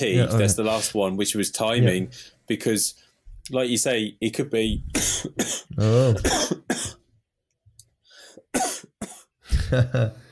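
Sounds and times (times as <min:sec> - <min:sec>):
speech: 0:00.0 - 0:06.9, 0:09.7 - 0:10.2
man coughing heavily with harsh chesty coughs: 0:04.9 - 0:07.0, 0:08.5 - 0:09.8.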